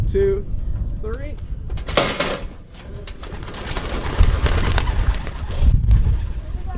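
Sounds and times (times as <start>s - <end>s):
low rumbling movement: 0.0s - 6.7s
speech: 0.1s - 1.5s
flock of racing pigeons flapping wings released from boxes in a pickup truck: 1.9s - 6.7s.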